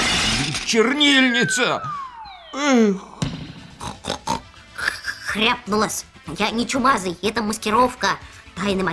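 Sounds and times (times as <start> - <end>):
speech: 0.7 - 2.0, 2.6 - 3.1, 5.3 - 8.9
person imitating pig squealing and grunting: 3.8 - 5.3.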